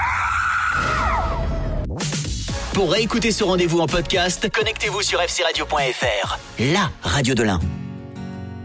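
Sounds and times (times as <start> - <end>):
loud sustained scream from a film: 0.0 - 1.8
speech: 2.8 - 7.8.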